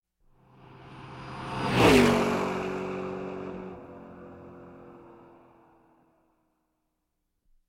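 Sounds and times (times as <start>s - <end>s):
racing car passing at 195 km/h from right to left: 0.4s - 6.2s.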